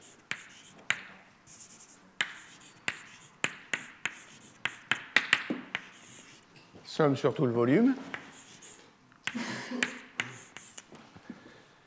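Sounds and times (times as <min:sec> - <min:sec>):
writing an equation on a board: 0:00.0 - 0:06.5, 0:08.1 - 0:10.9
speech: 0:07.0 - 0:08.1.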